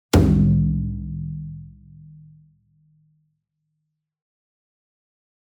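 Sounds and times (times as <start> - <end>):
28 inch taiko drum hit with whip beater: 0.2 - 0.8.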